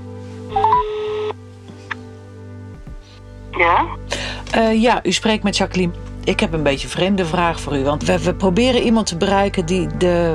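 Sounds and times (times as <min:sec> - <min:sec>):
short fainter telephone beep: 0:00.5 - 0:01.3
telephone dialing tones: 0:00.5 - 0:01.3
speech: 0:03.6 - 0:10.3.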